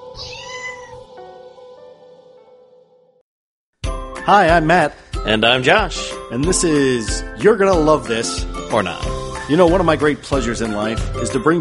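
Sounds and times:
cat meowing: 0.0s - 1.1s
speech: 4.2s - 11.6s.

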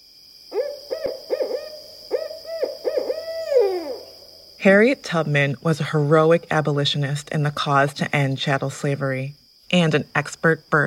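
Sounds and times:
Barred Owl hooting: 0.5s - 4.4s
speech: 4.6s - 10.8s.

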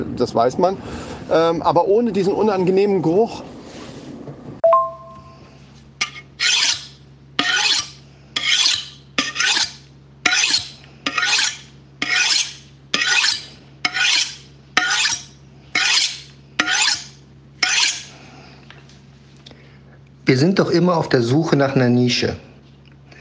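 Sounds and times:
speech: 0.1s - 3.5s, 20.8s - 22.5s
metallic ring: 4.6s - 5.5s
knife being sharpened: 6.0s - 18.1s.

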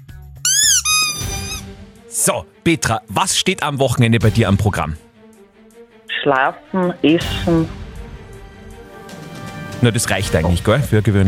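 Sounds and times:
loud high-pitched squeak marking the start of a game: 0.5s - 1.6s
speech: 2.2s - 5.0s, 6.2s - 7.8s, 9.8s - 11.2s.

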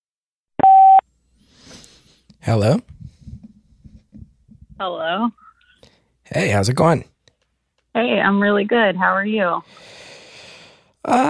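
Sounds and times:
electronic beep over a phone line: 0.6s - 1.0s
speech: 2.4s - 3.0s, 4.8s - 5.4s, 6.3s - 7.1s, 8.0s - 10.0s, 11.0s - 11.2s.

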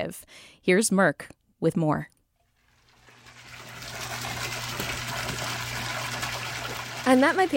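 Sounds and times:
speech: 0.0s - 2.2s, 7.1s - 7.5s
water rushing in a giant koi fish pond in a house driveway: 2.6s - 7.5s.

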